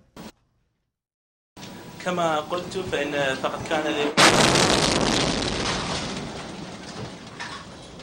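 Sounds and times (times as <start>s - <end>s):
man talking at a news conference: 2.0s - 4.2s
rocket blast explosion in Baghdad: 4.2s - 7.1s.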